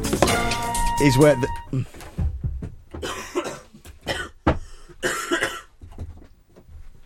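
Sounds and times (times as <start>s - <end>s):
speech: 0.1s - 2.0s
coughing into microphone: 2.9s - 5.8s
throat clearing: 3.0s - 4.4s, 5.0s - 5.7s.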